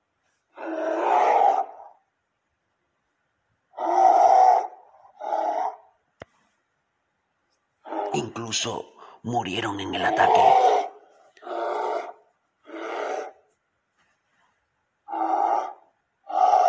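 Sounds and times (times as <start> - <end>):
large bear roaring during an attack: 0.5 - 2.0, 3.8 - 5.9, 7.8 - 8.2, 9.9 - 13.5, 15.0 - 16.6
speech: 8.2 - 10.8.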